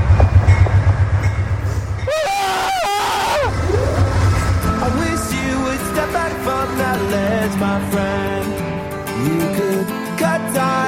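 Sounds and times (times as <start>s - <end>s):
train rumbling: 0.0s - 10.0s
train brakes squealing as it slows: 1.4s - 9.4s.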